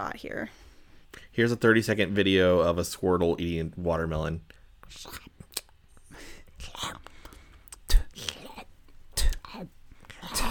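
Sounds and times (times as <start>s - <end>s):
speech: 0.0s - 5.3s
breathy whispering: 6.2s - 10.4s.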